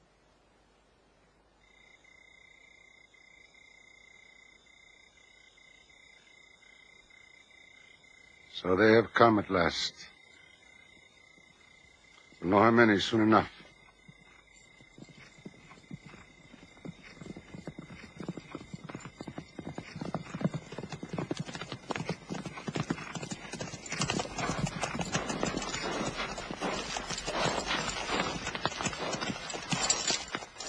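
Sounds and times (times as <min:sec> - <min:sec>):
speech: 0:08.6 - 0:10.1, 0:12.5 - 0:13.6
hooves of hundreds of horses clattering: 0:12.4 - 0:30.6.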